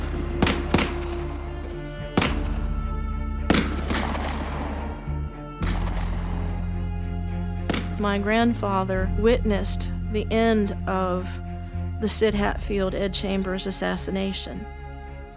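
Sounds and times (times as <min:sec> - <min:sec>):
steady low hum: 0:00.0 - 0:15.3
gunfire from several deputies shooting: 0:00.4 - 0:01.3, 0:02.2 - 0:02.6, 0:03.5 - 0:05.0, 0:05.6 - 0:06.6, 0:07.7 - 0:08.0
speech: 0:08.0 - 0:14.8.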